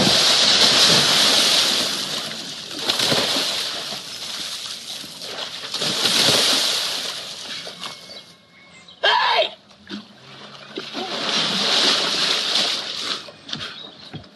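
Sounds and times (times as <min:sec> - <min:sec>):
person plunging into a river off a bridge: 0:00.0 - 0:07.8, 0:10.7 - 0:13.3.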